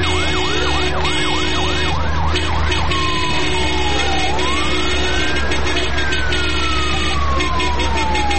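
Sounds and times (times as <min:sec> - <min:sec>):
rumble of road traffic on a road jammed with cars: 0:00.0 - 0:08.3
traffic police car siren yelping and wailing: 0:00.0 - 0:08.3.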